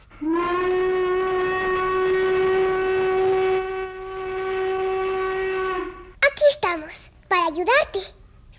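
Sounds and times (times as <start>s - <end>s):
speech: 0.2s - 0.5s, 7.6s - 8.2s
loud locomotive whistle blowing a long piercing note: 0.2s - 6.2s.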